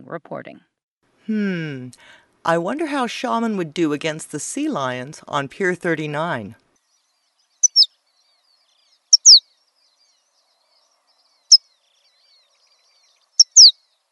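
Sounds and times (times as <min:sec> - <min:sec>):
speech: 0:00.1 - 0:00.7, 0:01.3 - 0:06.6
horned lark calls: 0:07.6 - 0:07.9, 0:09.1 - 0:09.4, 0:13.4 - 0:13.8.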